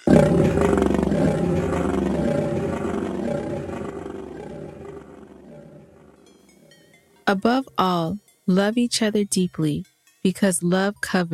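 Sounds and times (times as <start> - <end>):
lion roaring: 0.0 - 6.2
speech: 7.3 - 11.3.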